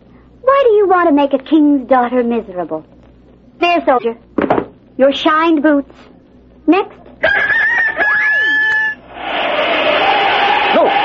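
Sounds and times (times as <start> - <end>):
speech: 0.9 - 2.9, 3.6 - 4.3, 5.0 - 6.1, 6.7 - 7.5
rooster crowing: 7.2 - 11.0.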